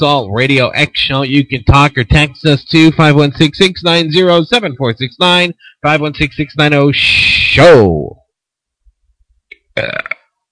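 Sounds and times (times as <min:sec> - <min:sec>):
speech: 0:00.0 - 0:08.2, 0:09.8 - 0:10.1
loud burp: 0:09.6 - 0:10.3.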